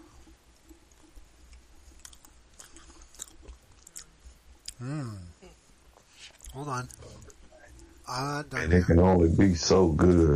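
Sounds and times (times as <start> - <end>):
person chewing a mouthful of chocolate cake: 0.5 - 5.0, 5.9 - 8.0
speech: 6.6 - 7.2, 8.1 - 10.3.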